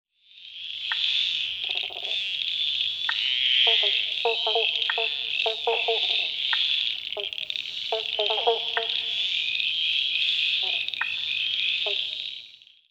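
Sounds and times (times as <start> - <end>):
frog chorus in central Victoria: 0.2 - 12.9.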